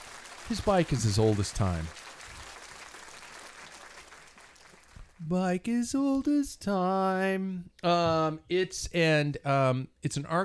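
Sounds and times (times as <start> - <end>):
crowd applause sound effect: 0.0 - 5.2
speech: 0.5 - 2.0, 5.3 - 10.4.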